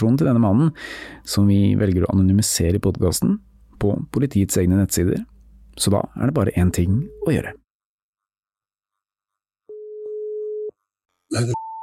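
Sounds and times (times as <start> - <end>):
speech: 0.0 - 7.6, 11.3 - 11.6
telephone ringing tone before call connects: 9.7 - 10.7.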